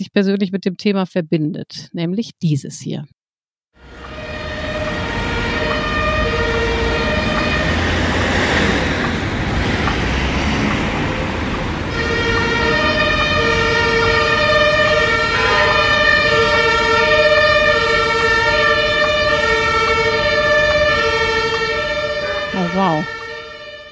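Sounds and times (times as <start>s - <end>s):
speech: 0.0s - 3.2s, 22.8s - 23.2s
sustained wailing siren-like tone: 3.8s - 9.1s, 11.1s - 23.8s
traffic rumble at a busy city intersection: 3.8s - 23.7s.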